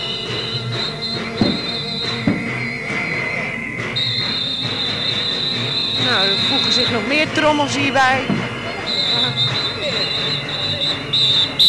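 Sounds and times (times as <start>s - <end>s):
crowd murmur: 0.0s - 11.6s
tram wheel squeal: 0.0s - 11.6s
sharp knocks: 1.2s - 2.7s, 8.2s - 8.6s
speech: 6.1s - 8.4s.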